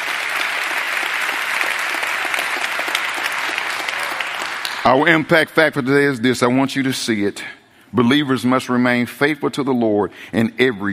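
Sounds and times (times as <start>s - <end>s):
church audience clapping hands in praise: 0.0s - 5.2s
speech: 4.8s - 10.9s.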